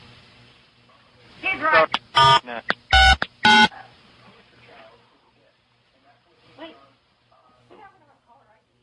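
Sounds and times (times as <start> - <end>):
speech: 1.6 - 2.4
telephone keypad dialing tones for star 69 callback: 2.1 - 3.7.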